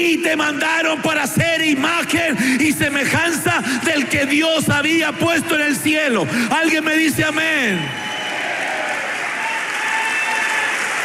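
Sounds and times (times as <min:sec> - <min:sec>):
speech: 0:00.0 - 0:08.1
church congregation clapping hands in praise during a worship service: 0:07.2 - 0:11.0.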